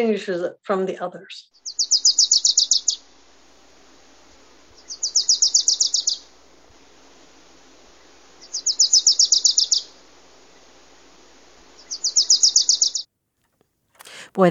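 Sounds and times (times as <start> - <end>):
speech: 0.0 - 1.8
small mostly yellow warbler with a black cap calling in town: 1.5 - 13.1.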